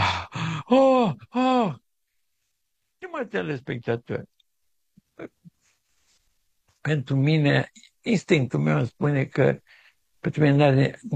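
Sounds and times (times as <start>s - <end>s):
voice imitating heavy panting with groaning exhales: 0.0s - 0.7s
speech: 0.7s - 1.8s, 3.2s - 4.3s, 5.2s - 5.5s, 6.8s - 11.1s.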